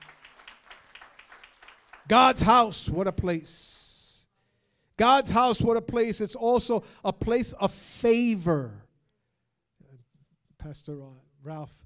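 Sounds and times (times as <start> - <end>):
crowd clapping: 0.0 - 2.8
speech: 2.1 - 3.8, 5.0 - 8.8, 10.6 - 11.8.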